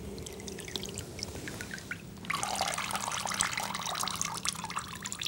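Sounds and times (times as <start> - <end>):
water splashing as a face is washed in a basin: 0.2 - 5.2.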